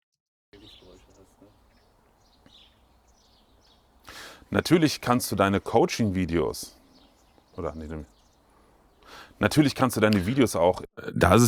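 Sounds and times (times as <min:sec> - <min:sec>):
steady outdoor hiss and rumble: 0:00.6 - 0:10.7
birds chirping faintly outdoors: 0:00.6 - 0:10.8
speech: 0:04.5 - 0:06.8, 0:07.6 - 0:08.1, 0:09.4 - 0:11.4.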